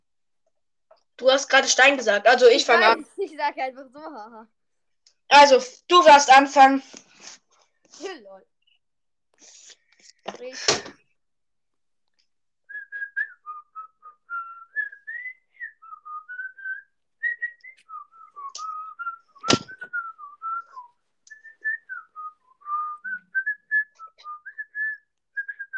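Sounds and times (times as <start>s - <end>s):
speech: 1.2s - 4.6s, 5.3s - 7.4s, 8.0s - 8.5s, 10.3s - 11.0s
person whistling a melodic tune: 12.7s - 25.7s
sharp knock or clack: 19.5s - 19.8s.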